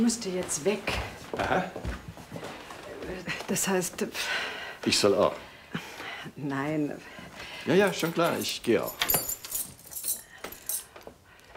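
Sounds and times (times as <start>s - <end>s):
speech: 0.0s - 2.1s, 3.1s - 5.5s, 6.3s - 9.3s
bunch of keys jangling: 7.7s - 11.5s.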